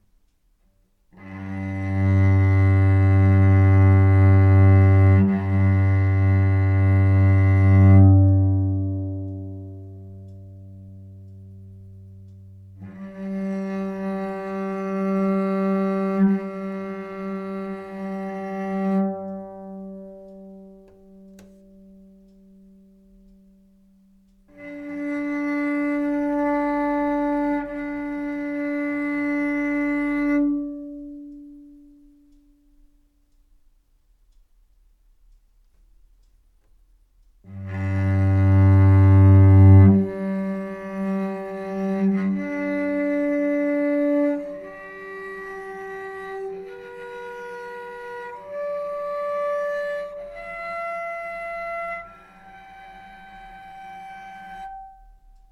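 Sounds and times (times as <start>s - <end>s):
cello G string overtones: 1.1s - 33.0s, 37.4s - 55.5s.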